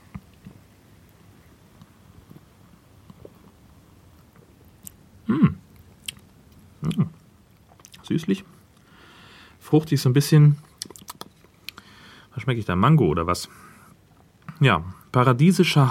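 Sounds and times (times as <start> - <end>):
faint mouth clicks while sipping: 4.4 - 7.2
gulping a clear yellow drink with a foamy head: 6.8 - 7.2
speech: 8.1 - 8.6, 9.7 - 10.7, 12.5 - 13.7, 14.6 - 15.9.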